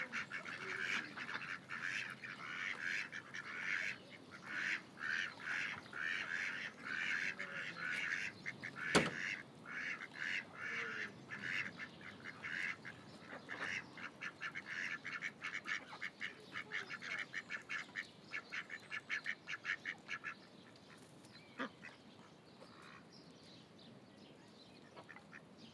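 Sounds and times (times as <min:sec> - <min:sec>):
ducks calling at a lagoon: 0:00.0 - 0:20.4.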